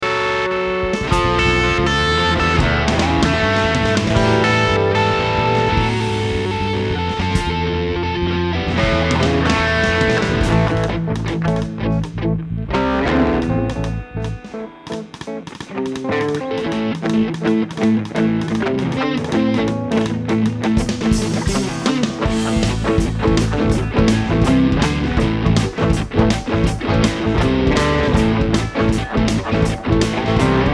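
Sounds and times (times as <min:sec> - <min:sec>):
drum samples mix: 0:00.7 - 0:07.9, 0:08.5 - 0:30.7.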